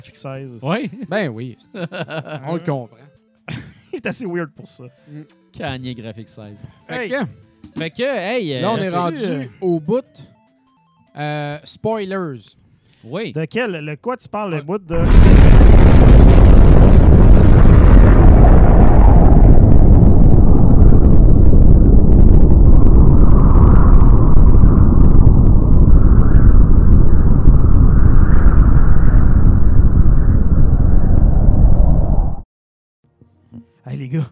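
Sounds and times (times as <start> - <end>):
speech: 0.0 - 10.3, 11.2 - 15.4, 34.1 - 34.3
laughter: 1.7 - 2.6, 3.5 - 4.1
explosion sound effect: 15.0 - 32.4.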